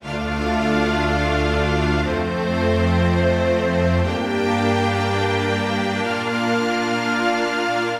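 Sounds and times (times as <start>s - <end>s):
smooth high MIDI string voicings: 0.0s - 7.9s.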